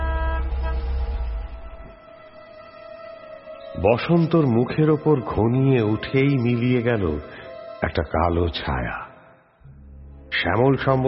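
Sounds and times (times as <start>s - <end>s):
familiar car horn sounding from a garden: 0.0s - 1.4s
speech: 3.8s - 9.0s, 10.4s - 11.0s.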